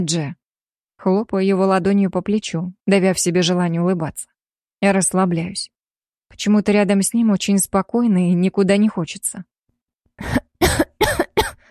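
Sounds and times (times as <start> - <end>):
speech: 0.0 - 0.4, 1.0 - 5.7, 6.3 - 9.5, 10.2 - 10.8
man coughing: 10.3 - 11.6.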